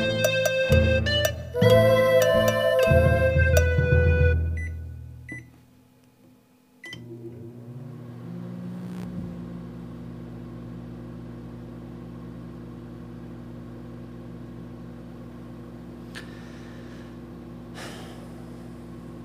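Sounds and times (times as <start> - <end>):
microwave oven beeping as buttons are pressed: 0.0 - 5.6, 6.8 - 9.9
microwave oven humming while heating cold eggplant: 0.0 - 19.2.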